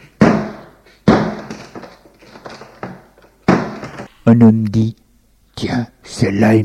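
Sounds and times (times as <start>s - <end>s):
cellar doors being forced and torn off: 0.0s - 4.1s
small knocks and creaks: 1.5s - 4.1s
speech: 4.3s - 5.0s, 5.6s - 6.6s.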